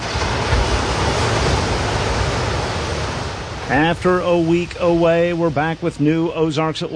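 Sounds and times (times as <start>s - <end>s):
early morning ocean waves washing onto a beach: 0.0s - 6.9s
speech: 3.7s - 6.9s.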